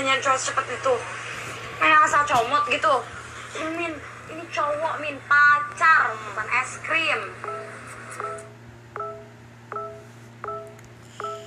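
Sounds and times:
steady low hum: 0:00.0 - 0:11.4
speech: 0:00.1 - 0:07.6
phone notification tones: 0:07.4 - 0:11.4.

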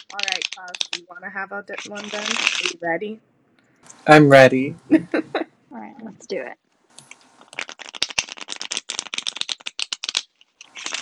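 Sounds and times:
playing cards shuffling: 0:00.0 - 0:02.9, 0:06.9 - 0:11.0
speech: 0:00.0 - 0:06.6
laughter: 0:04.2 - 0:05.5.

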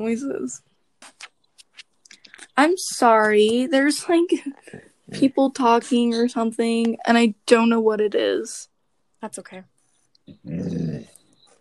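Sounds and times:
speech: 0:00.0 - 0:01.2, 0:02.6 - 0:09.7, 0:10.3 - 0:11.1
female pet dog growling: 0:10.3 - 0:11.2.

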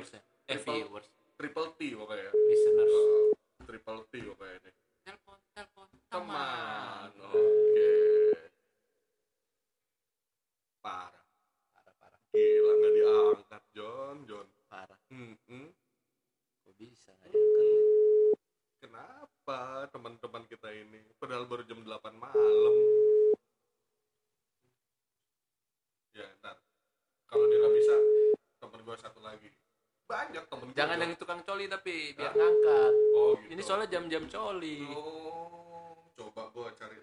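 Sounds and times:
speech: 0:00.1 - 0:03.2, 0:33.7 - 0:35.7
phone call ringing tone beeps: 0:02.3 - 0:03.4, 0:07.4 - 0:08.4, 0:12.4 - 0:13.4, 0:17.4 - 0:18.4, 0:22.4 - 0:23.4, 0:27.3 - 0:28.4, 0:32.3 - 0:33.4.

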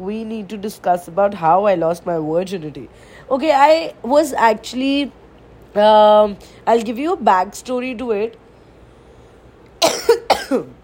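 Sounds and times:
speech: 0:00.0 - 0:08.4, 0:10.5 - 0:10.8
unwell person coughing harshly: 0:09.8 - 0:10.8.

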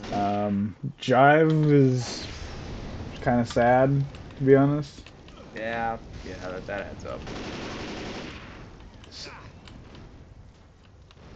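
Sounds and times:
rapid video game gunfire: 0:00.0 - 0:00.4, 0:05.1 - 0:10.3, 0:11.1 - 0:11.3
speech: 0:00.1 - 0:02.4, 0:03.2 - 0:08.0, 0:09.1 - 0:09.4.

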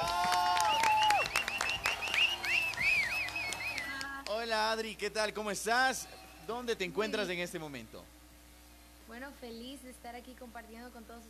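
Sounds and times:
people clapping: 0:00.0 - 0:04.9
bright chirpy whistles: 0:00.5 - 0:04.1
speech: 0:04.7 - 0:08.2, 0:09.1 - 0:11.2.

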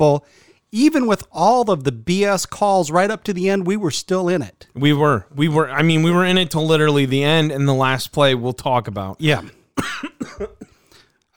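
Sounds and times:
speech: 0:00.0 - 0:10.5
harsh coughs: 0:09.3 - 0:11.3.

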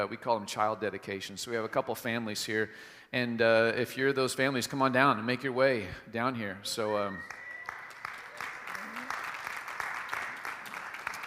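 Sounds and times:
speech: 0:00.0 - 0:07.4
church congregation clapping: 0:07.2 - 0:11.2.

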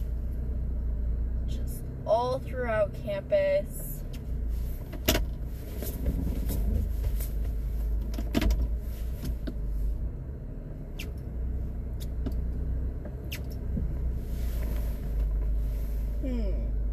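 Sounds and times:
car engine rumbling while parallel parking on a campus: 0:00.0 - 0:16.9
speech: 0:02.1 - 0:03.9.

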